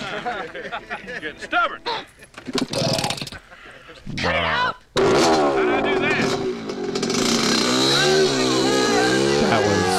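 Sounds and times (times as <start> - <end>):
laughter: 0.0 - 2.6, 3.2 - 4.1
speech: 0.2 - 4.8
small motorcycle engine revving: 5.0 - 9.9.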